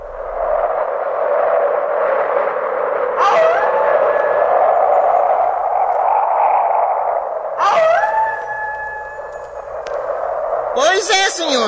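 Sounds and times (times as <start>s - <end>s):
roaring steady strong wind: 0.0s - 11.6s
wolves howling: 2.9s - 11.2s
speech: 11.0s - 11.6s.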